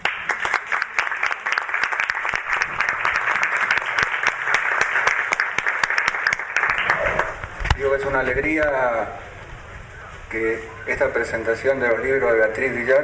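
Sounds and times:
audience applause at a book presentation in a writers' library: 0.0s - 7.5s
speech: 7.8s - 9.3s, 10.3s - 13.0s.

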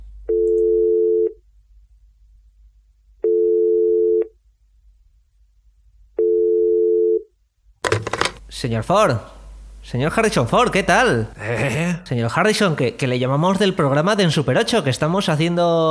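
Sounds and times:
telephone ringback tones: 0.3s - 1.3s, 3.2s - 4.3s, 6.2s - 7.2s
speech: 8.5s - 15.9s.

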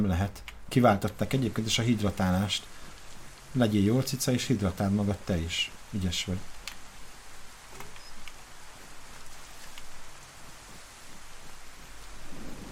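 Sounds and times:
speech: 0.0s - 2.9s, 3.5s - 6.5s
rain beginning to fall: 0.0s - 12.7s.

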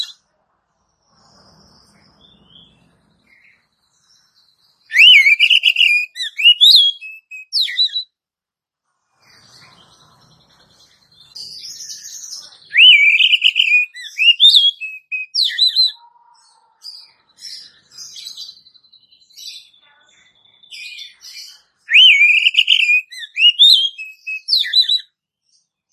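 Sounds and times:
Oriental magpie-robin giving sharp whistled notes and warbling phrase: 0.0s - 0.2s, 4.9s - 8.1s, 11.3s - 18.6s, 19.3s - 25.1s
quieter chirps and thin high notes of Oriental magpie-robin: 0.0s - 8.2s, 8.8s - 25.9s.

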